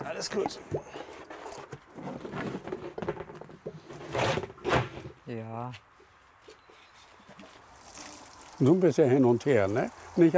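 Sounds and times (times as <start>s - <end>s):
speech: 0.2s - 1.1s, 5.3s - 5.9s, 8.6s - 10.3s
water poured from a watering can: 7.6s - 10.3s.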